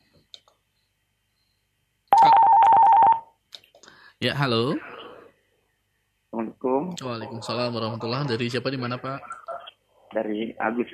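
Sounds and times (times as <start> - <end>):
buzzing telephone tone of an incoming call: 2.1 - 3.4
speech: 4.2 - 4.9, 6.9 - 9.4, 10.1 - 10.9.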